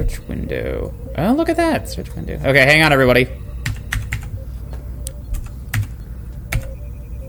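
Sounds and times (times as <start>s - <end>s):
speech: 0.0s - 3.4s
low hum: 0.0s - 7.2s
mechanical keyboard keys clacking while typing: 3.6s - 4.3s, 5.3s - 5.9s.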